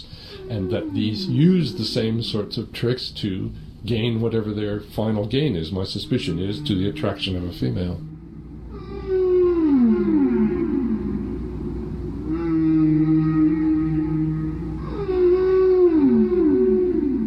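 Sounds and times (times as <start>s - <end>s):
long mournful whale song with sweeping tonal calls: 0.0s - 2.6s, 6.1s - 17.2s
speech: 0.4s - 8.1s.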